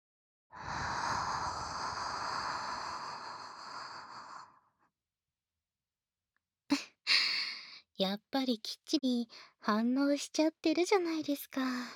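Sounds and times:
soft breath blown into the ear: 0:00.6 - 0:04.6
speech: 0:08.0 - 0:11.9.

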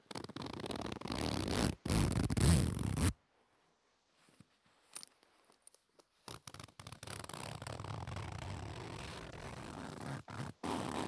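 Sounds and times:
zipper pulls on a light cheap pencil case with a long zip: 0:00.1 - 0:03.2, 0:06.3 - 0:11.0.

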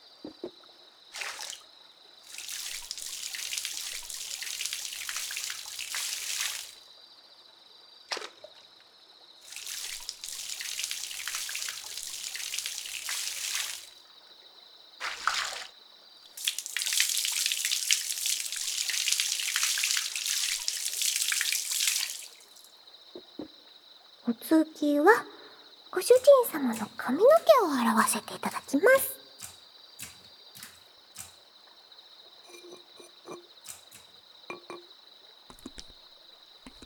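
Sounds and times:
water trickling: 0:00.3 - 0:06.8, 0:09.4 - 0:14.0, 0:16.2 - 0:23.5, 0:25.0 - 0:36.8
hot water poured over a person after washing: 0:01.2 - 0:01.6, 0:02.2 - 0:06.8, 0:09.4 - 0:14.0, 0:15.0 - 0:22.7, 0:26.0 - 0:31.3
speech: 0:24.3 - 0:25.3, 0:25.9 - 0:29.2.

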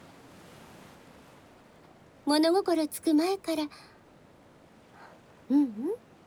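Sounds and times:
ocean waves washing onto a shore: 0:00.0 - 0:02.3
speech: 0:02.3 - 0:03.9, 0:05.5 - 0:06.1.

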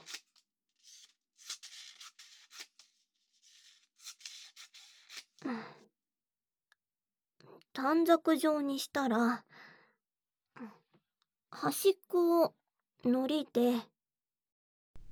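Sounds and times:
scissors cutting origami paper into strips: 0:00.0 - 0:05.4
speech: 0:07.8 - 0:09.5, 0:11.6 - 0:13.9.

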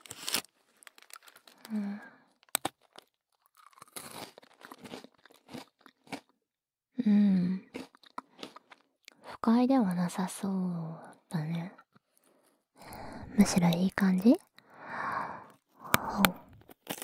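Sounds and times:
close-up crunchy chewing: 0:00.0 - 0:01.7, 0:02.3 - 0:06.4, 0:07.7 - 0:09.2, 0:16.3 - 0:17.0
speech: 0:07.1 - 0:07.3, 0:09.5 - 0:11.7, 0:13.4 - 0:14.5.

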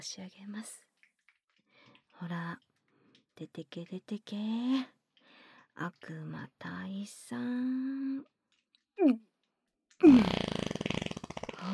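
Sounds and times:
speech: 0:00.0 - 0:00.9, 0:02.2 - 0:02.7, 0:03.4 - 0:05.0, 0:05.8 - 0:08.3, 0:09.0 - 0:09.3, 0:10.0 - 0:10.6
fart: 0:10.0 - 0:11.7.

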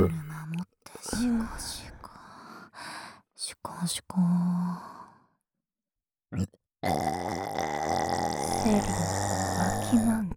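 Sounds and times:
speech: 0:00.0 - 0:00.2, 0:01.0 - 0:01.8, 0:03.8 - 0:04.9, 0:06.4 - 0:07.0
short throaty gulp: 0:00.0 - 0:00.3, 0:06.4 - 0:10.0
long loud rumbling burp: 0:06.3 - 0:10.1.

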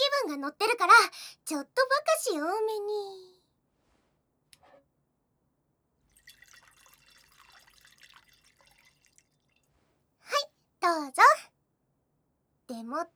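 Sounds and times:
speech: 0:00.2 - 0:03.4, 0:10.3 - 0:11.5, 0:12.7 - 0:13.1
sake pouring into a cup: 0:06.1 - 0:09.7.

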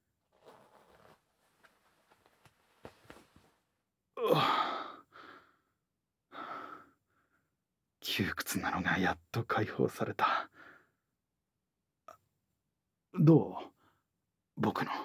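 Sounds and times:
trouser zipper being pulled down: 0:00.3 - 0:03.6
soft fabric rustles: 0:00.3 - 0:03.8
speech: 0:08.2 - 0:10.5, 0:13.2 - 0:13.7, 0:14.6 - 0:15.0.

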